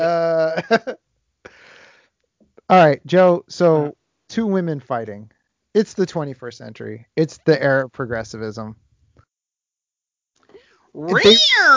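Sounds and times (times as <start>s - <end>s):
speech: 0.6s - 1.0s, 2.7s - 8.8s, 10.9s - 11.7s
cat fight yowling sound effect: 11.0s - 11.7s.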